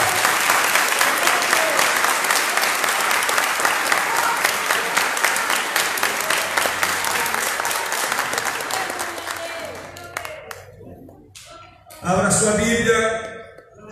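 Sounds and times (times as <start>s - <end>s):
large church audience applauding during a sermon: 0.0s - 11.0s
speech: 12.4s - 13.2s.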